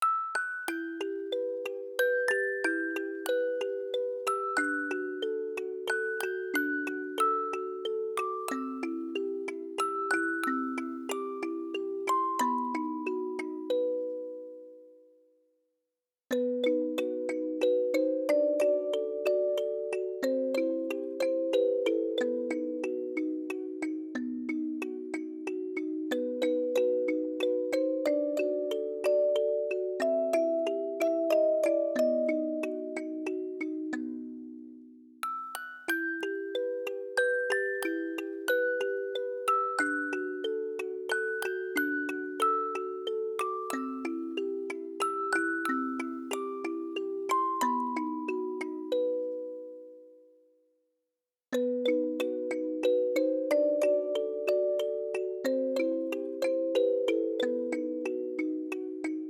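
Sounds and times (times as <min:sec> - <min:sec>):
music box playing flamenco music: 0:00.0 - 0:15.0, 0:16.3 - 0:50.3, 0:51.6 - 0:59.2.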